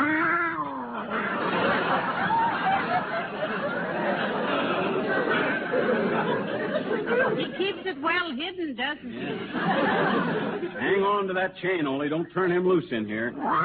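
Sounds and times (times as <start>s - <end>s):
cat yowling: 0.0s - 1.1s, 13.4s - 13.6s
laughter: 0.8s - 8.0s, 9.1s - 11.2s
speech: 8.0s - 13.6s.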